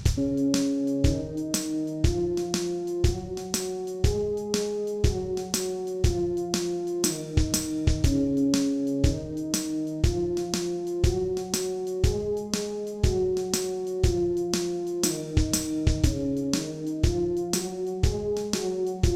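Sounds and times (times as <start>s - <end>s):
brass instrument practising an Eb scale: 0.2s - 19.1s.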